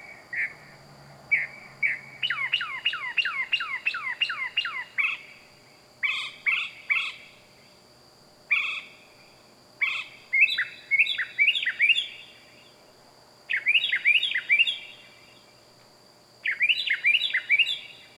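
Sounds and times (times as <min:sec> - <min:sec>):
loud bird calling at night in the wild: 0:00.0 - 0:05.4, 0:06.0 - 0:07.3, 0:08.5 - 0:09.0, 0:09.8 - 0:12.4, 0:13.5 - 0:15.1, 0:16.4 - 0:18.1
steady high hum: 0:00.0 - 0:18.1.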